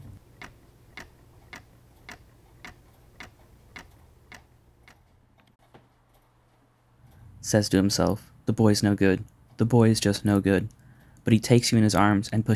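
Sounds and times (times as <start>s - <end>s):
faint low hum: 0.0s - 4.9s
clock ticking: 0.0s - 5.0s
speech: 7.5s - 12.5s.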